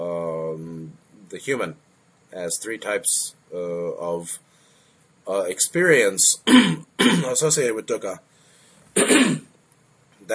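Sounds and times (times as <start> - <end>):
speech: 1.3 - 4.5, 5.3 - 8.3
throat clearing of phlegm: 6.5 - 7.4, 9.0 - 9.6.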